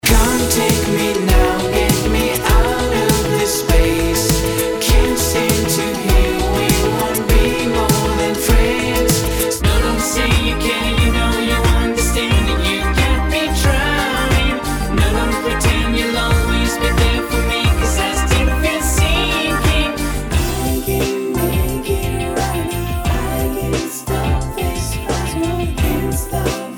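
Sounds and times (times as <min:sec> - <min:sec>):
showreel pop music: 0:00.0 - 0:26.7.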